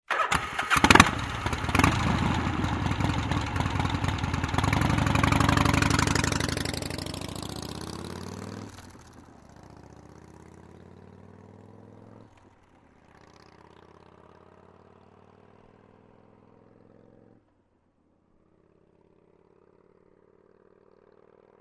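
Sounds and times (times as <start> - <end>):
Harley-Davidson motorcycle starting: 0.1 - 13.6
Harley-Davidson motorcycle driving away: 0.1 - 17.7, 18.3 - 21.5.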